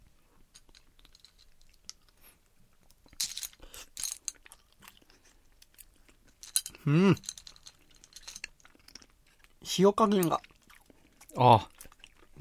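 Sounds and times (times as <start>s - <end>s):
chewing and biting clams steamed in sake: 3.6s - 6.4s, 7.7s - 9.6s, 10.2s - 12.3s
speech: 6.8s - 7.3s, 9.8s - 10.5s, 11.4s - 11.7s.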